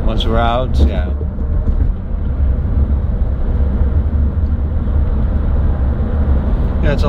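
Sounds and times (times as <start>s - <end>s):
road rumble and engine drone inside a 2021 Chrysler Pacifica minivan in traffic: 0.0s - 7.0s
speech: 0.2s - 1.3s, 6.8s - 7.0s.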